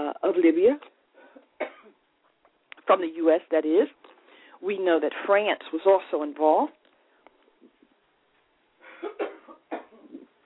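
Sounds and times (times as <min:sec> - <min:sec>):
speech: 0:00.2 - 0:00.9, 0:02.9 - 0:04.0, 0:04.6 - 0:06.8
coughs from someone with something in their throat: 0:01.3 - 0:02.0, 0:08.8 - 0:10.3.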